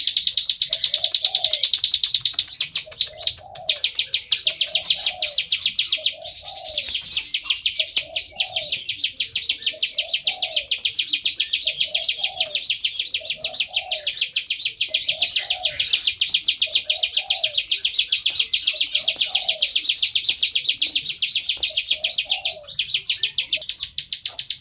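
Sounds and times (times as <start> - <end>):
bar-winged prinia calling in sharp buzzy notes: 0.0 - 24.5.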